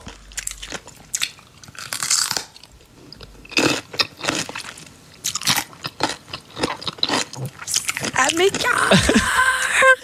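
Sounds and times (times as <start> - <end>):
woman crunching and chewing a large firm pickle: 0.0 - 9.0.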